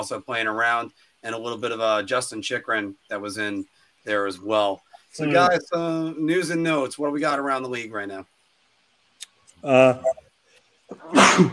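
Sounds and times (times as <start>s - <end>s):
speech: 0.0s - 8.3s, 9.6s - 10.2s, 10.9s - 11.5s
person sneezing: 10.9s - 11.5s.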